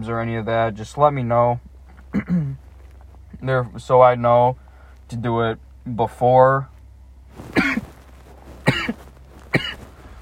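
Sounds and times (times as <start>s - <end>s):
speech: 0.0s - 2.6s, 3.4s - 6.7s
low hum: 0.0s - 10.1s
person coughing: 2.1s - 2.6s, 7.6s - 7.9s, 8.6s - 9.8s.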